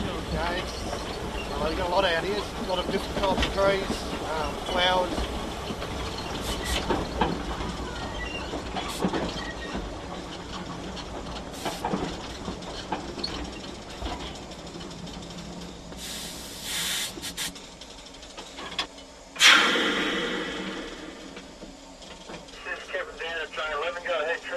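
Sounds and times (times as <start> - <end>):
steam train rumbling along rails through rainforest in Tasmania Australia: 0.0 - 24.5
rhythmic clickety-clack and metallic clanks of train: 0.2 - 15.8
speech: 0.4 - 5.4
loud hiss of steam from train: 6.2 - 6.9, 11.6 - 11.9, 16.0 - 17.5, 19.4 - 21.6.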